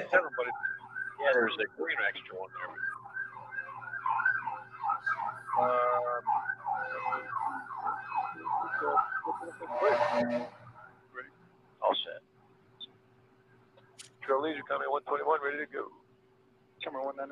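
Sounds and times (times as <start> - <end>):
laughter: 0.0 - 0.4, 9.2 - 10.1
speech: 0.0 - 2.9, 5.6 - 10.6, 11.2 - 12.3, 14.3 - 16.0, 16.8 - 17.3
ambulance or police emergency siren wailing in a fast warble: 0.0 - 11.1
low constant hum: 0.0 - 17.3.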